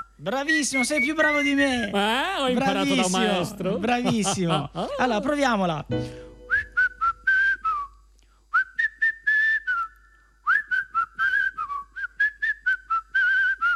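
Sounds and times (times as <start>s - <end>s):
speech: 0.2s - 6.2s
laughter: 2.0s - 5.6s
person whistling a lilting melody: 5.9s - 13.7s.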